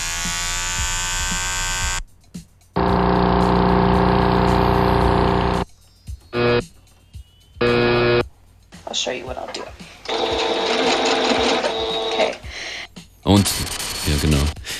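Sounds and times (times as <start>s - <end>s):
buzzing electric devices: 0.0s - 2.0s, 2.8s - 5.6s, 6.4s - 6.7s, 7.6s - 8.2s, 10.1s - 12.5s, 13.4s - 14.6s
sewing machine motor whirring: 2.8s - 5.6s, 10.1s - 12.5s.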